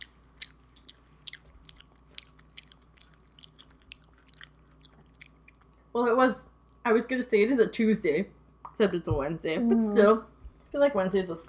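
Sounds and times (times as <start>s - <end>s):
chewing and biting of crunchy food: 0.0s - 5.9s
speech: 6.0s - 11.4s.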